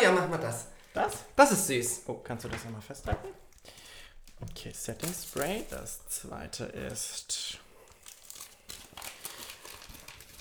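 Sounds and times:
speech: 0.1s - 3.8s, 4.4s - 7.6s
gift wrapping paper crinkling and tearing as a gift is unwrapped: 4.2s - 10.3s.

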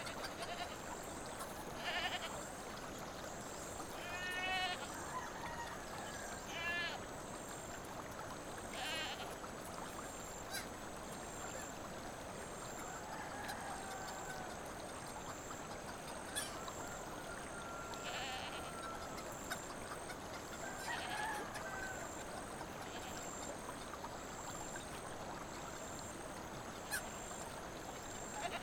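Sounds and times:
bleating farm animals: 0.0s - 0.9s, 1.8s - 2.4s, 4.0s - 4.9s, 6.5s - 7.0s, 8.7s - 9.3s, 18.0s - 18.8s, 22.8s - 23.3s, 28.3s - 28.6s
babbling brook in the countryside: 0.0s - 28.6s.

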